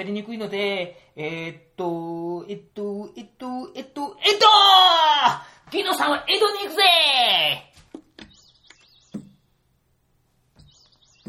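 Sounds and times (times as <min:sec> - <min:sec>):
speech: 0:00.0 - 0:07.7
bird chirping: 0:07.8 - 0:11.2
soft thumps and taps: 0:09.1 - 0:09.4, 0:10.5 - 0:11.2.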